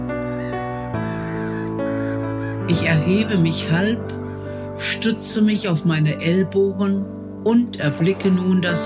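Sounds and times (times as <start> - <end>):
seagulls crying in flight above a beach: 0.0 - 4.7
speech: 2.7 - 4.2, 4.8 - 8.8.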